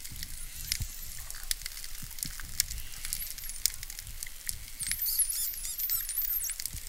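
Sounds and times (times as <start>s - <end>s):
dolphin clicks and crackles: 0.0s - 6.8s
steady underwater noise: 0.0s - 6.8s
dolphin high wavering whistles: 4.8s - 6.6s.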